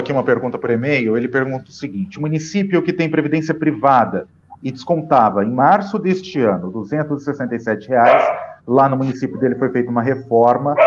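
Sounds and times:
speech: 0.1s - 10.8s
dog barking: 8.0s - 9.6s.

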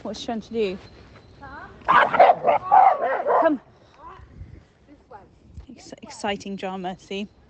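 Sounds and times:
speech: 0.0s - 3.7s, 5.8s - 7.4s
dog barking sharply in a small wood: 1.9s - 3.6s.

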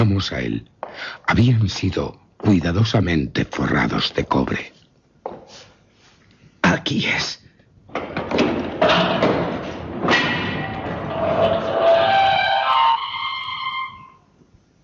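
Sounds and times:
speech: 0.0s - 4.8s, 6.7s - 8.4s
massive solid armoured iron door creaking on its hinges: 7.9s - 14.2s.

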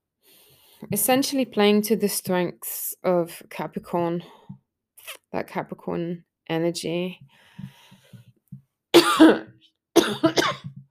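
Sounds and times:
speech: 0.8s - 4.4s, 5.0s - 7.7s, 10.1s - 10.6s
person clearing throat: 9.0s - 10.8s
person coughing: 9.0s - 10.8s.

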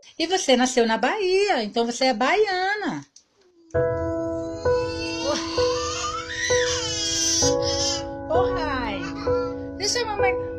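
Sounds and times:
speech: 0.0s - 3.1s, 3.7s - 4.0s, 9.9s - 10.5s
young girl crying loudly: 3.5s - 8.2s, 9.0s - 9.8s.

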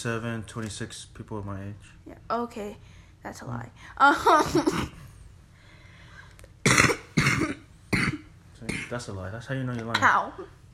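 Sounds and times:
speech: 0.0s - 5.1s, 8.6s - 10.6s
person coughing: 4.5s - 5.0s, 6.7s - 9.0s.

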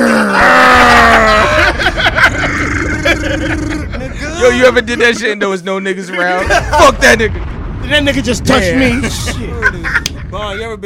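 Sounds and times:
man growling loudly and forcefully: 0.0s - 1.7s, 2.3s - 4.9s
laughter: 0.4s - 5.4s, 6.1s - 7.5s, 8.5s - 10.6s
speech: 4.4s - 10.8s.

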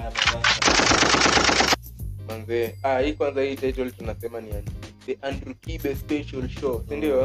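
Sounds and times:
rapid machine-gun fire: 0.0s - 1.8s
speech: 2.4s - 7.2s.

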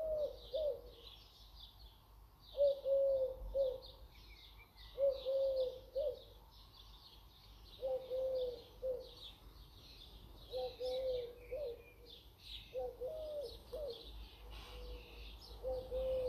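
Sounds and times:
low cooing bird call: 0.0s - 1.1s, 2.6s - 4.0s, 4.9s - 6.4s, 7.8s - 9.3s, 10.5s - 16.2s.

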